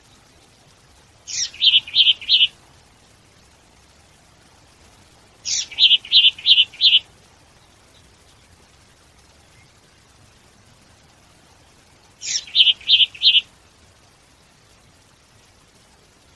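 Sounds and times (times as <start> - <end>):
bird giving harsh high note and rapid clipped chirps: 1.2 - 2.6, 5.4 - 9.9, 12.2 - 13.5.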